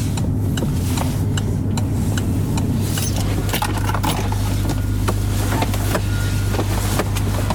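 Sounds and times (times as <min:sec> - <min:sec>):
car engine humming as the car pulls in and parks: 0:00.0 - 0:07.5.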